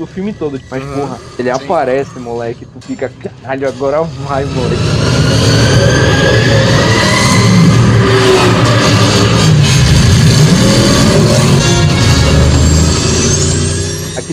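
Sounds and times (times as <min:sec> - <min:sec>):
speech: 0:00.0 - 0:06.8
powerful movie car engine roaring and revving: 0:04.1 - 0:14.3.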